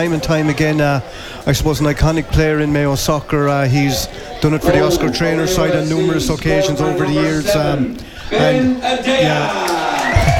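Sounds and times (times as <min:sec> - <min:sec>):
football crowd cheering after a goal: 0:00.0 - 0:10.3
speech: 0:00.0 - 0:10.3
voices whooping: 0:04.5 - 0:10.3.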